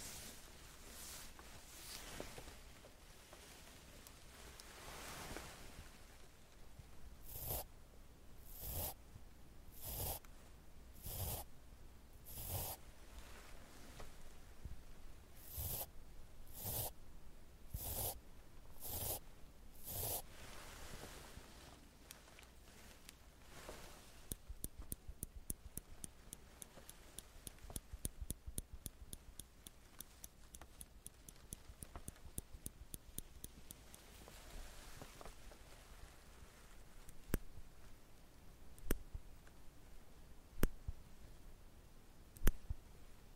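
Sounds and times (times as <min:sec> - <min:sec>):
faint low hum: 0:00.0 - 0:43.3
tweezers clicking: 0:24.3 - 0:34.0.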